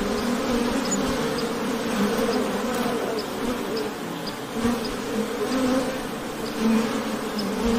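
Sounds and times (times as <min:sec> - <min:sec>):
honey bees buzzing: 0:00.0 - 0:07.7.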